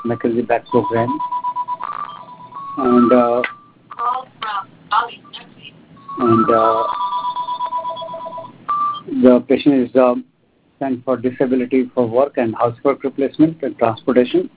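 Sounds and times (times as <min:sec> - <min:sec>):
speech: 0:00.0 - 0:01.3, 0:02.8 - 0:03.6, 0:06.2 - 0:07.0, 0:09.0 - 0:14.5
phone ringing in electronic trills: 0:00.0 - 0:09.1.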